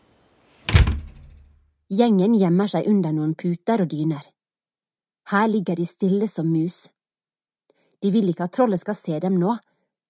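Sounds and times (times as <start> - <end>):
wooden treehouse door shutting with a solid thud: 0.6 - 1.5
speech: 1.9 - 4.3, 5.3 - 7.0, 8.0 - 9.7.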